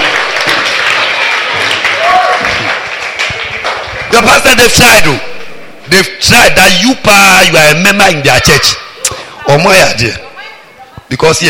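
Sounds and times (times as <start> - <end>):
church congregation clapping for the pastor: 0.0 - 5.2
speech: 4.1 - 5.3, 5.9 - 8.8, 9.5 - 10.2, 11.1 - 11.4.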